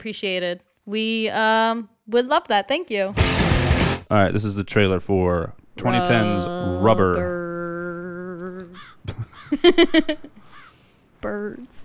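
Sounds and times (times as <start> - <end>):
speech: 0.0 - 3.4, 4.1 - 7.4, 9.1 - 10.3, 11.2 - 11.8
crows cawing loudly: 8.8 - 9.0, 10.4 - 10.9
laughter: 9.0 - 10.4.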